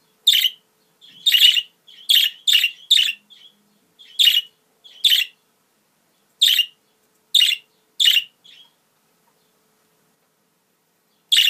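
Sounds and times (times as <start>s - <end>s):
female budgerigar harsh scratchy chirps: 0.3s - 5.4s, 6.4s - 6.8s, 7.4s - 8.8s.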